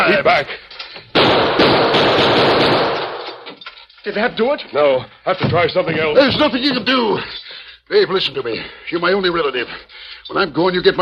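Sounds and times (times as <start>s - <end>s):
speech: 0.2s - 0.6s, 4.0s - 11.0s
gunshots fired at a chain staple: 1.1s - 3.5s.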